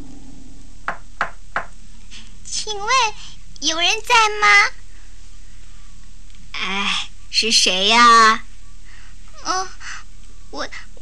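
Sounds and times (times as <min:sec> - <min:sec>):
knocking on a burrow door walled with corn leaves in a cornfield: 0:00.9 - 0:01.7
speech: 0:02.5 - 0:04.8, 0:07.4 - 0:08.4.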